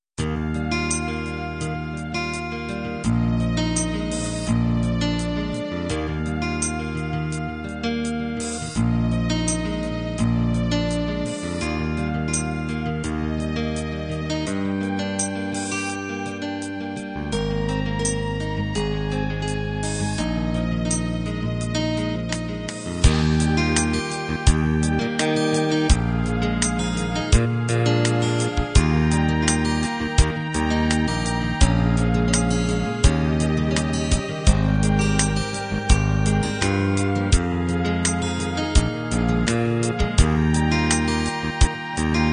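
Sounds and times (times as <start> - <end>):
gentle arpeggiated guitar ballad: 0.2 - 42.3.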